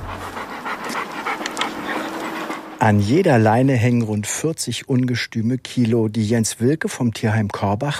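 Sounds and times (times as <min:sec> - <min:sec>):
two large powerful shelter dogs panting heavily: 0:00.0 - 0:03.2
speech: 0:02.8 - 0:07.9.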